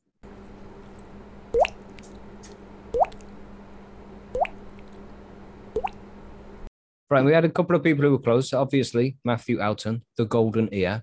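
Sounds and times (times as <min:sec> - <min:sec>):
faint steady hum: 0:00.0 - 0:06.7
voice imitating water dripping with the mouth: 0:00.2 - 0:06.7
speech: 0:07.1 - 0:11.0.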